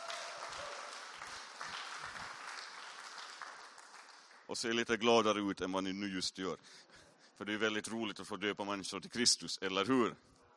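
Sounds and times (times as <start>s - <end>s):
crowd applauding: 0.0s - 4.6s
speech: 4.5s - 10.4s.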